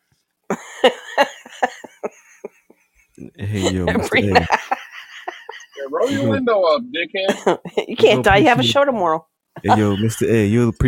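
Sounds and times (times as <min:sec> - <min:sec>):
laughter: 0:00.5 - 0:02.6, 0:03.2 - 0:06.5, 0:09.6 - 0:10.7
speech: 0:00.8 - 0:01.3, 0:03.8 - 0:04.6, 0:06.0 - 0:10.8
harsh coughing from a seated person: 0:03.4 - 0:04.6.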